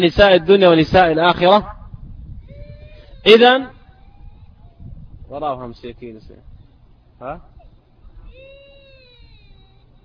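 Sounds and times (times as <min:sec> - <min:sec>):
speech: 0:00.0 - 0:01.8, 0:03.2 - 0:03.8, 0:05.3 - 0:06.5, 0:07.2 - 0:07.5
young child crying: 0:02.4 - 0:05.0, 0:08.2 - 0:10.0.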